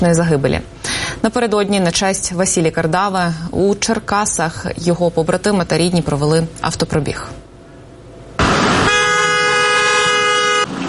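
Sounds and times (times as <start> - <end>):
speech: 0.0 - 7.4
hum: 0.0 - 10.6
loud sustained car horn blaring: 8.6 - 10.8.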